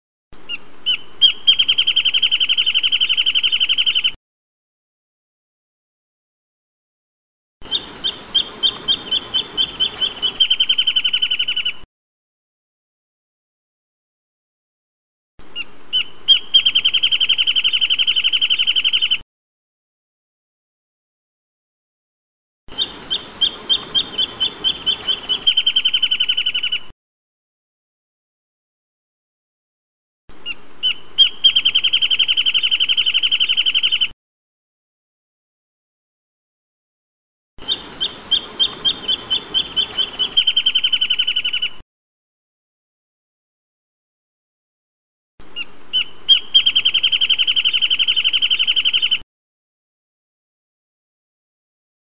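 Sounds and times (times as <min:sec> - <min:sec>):
wrentit chirping: 0:00.4 - 0:04.2, 0:07.6 - 0:11.8, 0:15.5 - 0:19.2, 0:22.7 - 0:26.9, 0:30.4 - 0:34.1, 0:37.6 - 0:41.8, 0:45.4 - 0:49.2.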